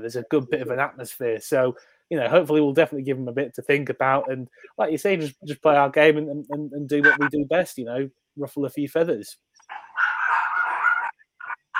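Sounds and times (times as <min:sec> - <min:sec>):
speech: 0:00.0 - 0:10.0
dog barking: 0:09.7 - 0:11.1
dog yelping: 0:09.7 - 0:11.7.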